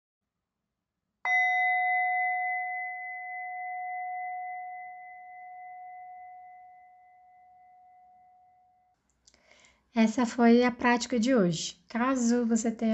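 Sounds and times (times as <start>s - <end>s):
meditation bell ringing: 1.3s - 8.9s
speech: 10.0s - 12.9s.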